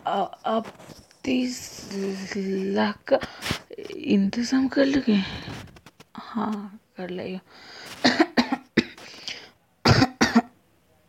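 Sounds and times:
speech: 0.1 - 5.6, 6.3 - 8.2
person coughing heavily: 8.0 - 9.2, 9.9 - 10.5.

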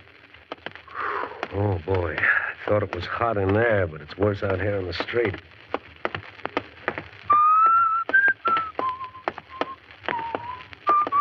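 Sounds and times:
speech: 1.5 - 5.6
person whistling a simple melody on a street: 7.3 - 11.1.

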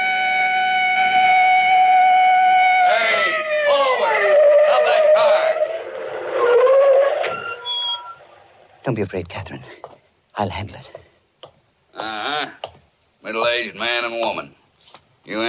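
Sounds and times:
police car siren wailing: 0.0 - 8.2
speech: 8.9 - 11.0, 13.3 - 14.5, 15.3 - 15.4.

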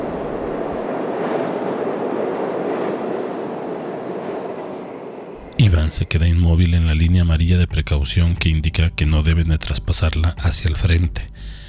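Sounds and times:
metro train pulling away from a station platform: 0.0 - 8.9
speech: 5.7 - 11.6.

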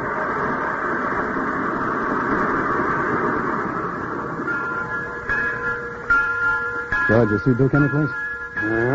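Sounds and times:
faint high whine: 0.0 - 8.9
speech: 7.1 - 8.9.

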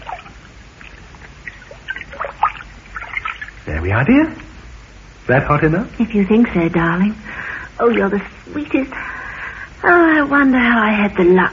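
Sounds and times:
soft splashes of someone stepping into a filled bathtub: 0.0 - 3.7
water sloshing and trickling in a filled bathtub: 0.0 - 3.7, 6.8 - 9.1
speech: 3.8 - 4.4, 5.3 - 7.2, 7.8 - 9.1, 9.8 - 11.5.

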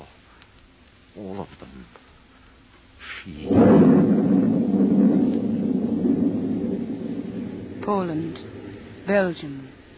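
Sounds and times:
speech: 1.2 - 2.1, 3.2 - 4.3, 7.9 - 9.7
deep rolling thunder in a storm: 3.3 - 9.9.

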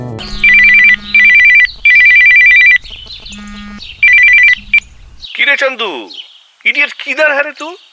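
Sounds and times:
telephone ringing with electronic trilling tone: 0.3 - 5.0
speech: 5.5 - 7.8.

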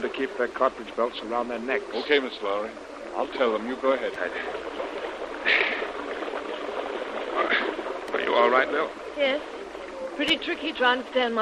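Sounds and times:
speech: 0.0 - 4.8, 8.4 - 9.6, 10.2 - 11.3
people wading through river water: 0.0 - 11.3
sharp splash: 4.1 - 8.9.

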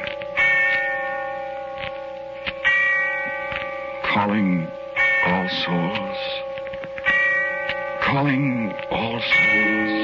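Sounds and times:
heavy church bell tolling on All Souls Night: 0.0 - 10.0
speech: 4.2 - 6.5, 8.1 - 10.0.

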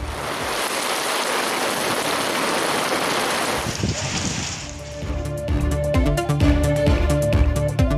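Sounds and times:
summer rain falling: 0.0 - 5.1
rhythmic music with a beat: 5.0 - 7.9.

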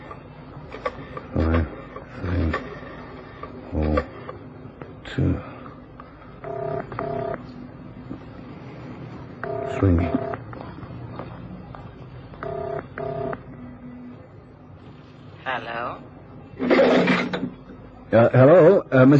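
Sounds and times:
faint hum: 0.0 - 19.1
touch-tone phone dialing beeps: 6.4 - 7.4
speech: 9.8 - 10.2.

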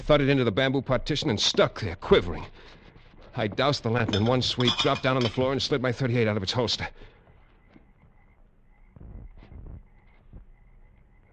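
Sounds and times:
speech: 0.1 - 2.8, 3.4 - 7.1
frogs croaking in a night chorus in a jungle: 4.0 - 11.3
thin insect-like hum: 7.1 - 11.3.

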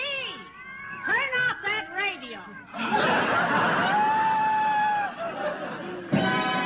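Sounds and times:
several cats meowing and yowling: 0.2 - 2.9
laughter: 2.6 - 6.5.

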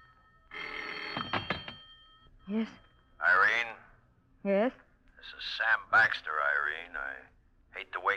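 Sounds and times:
telephone bell ringing: 0.0 - 3.6
speech: 2.5 - 3.7, 4.4 - 8.1.

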